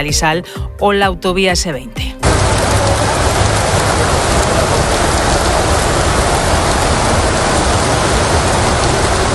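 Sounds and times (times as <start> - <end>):
speech: 0.0 - 2.1
heavy rain pouring during a strong storm in Santander: 2.2 - 9.3.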